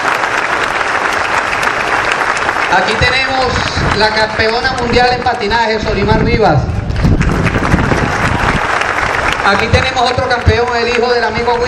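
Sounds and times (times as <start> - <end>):
crowd applauding a cycling champion at a municipal sports-day ceremony: 0.0 - 5.8, 6.7 - 11.6
speech: 2.7 - 6.8, 9.5 - 11.6.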